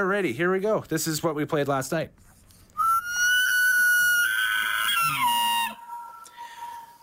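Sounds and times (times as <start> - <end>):
speech: 0.0 - 2.3
elk bugle: 2.8 - 7.0.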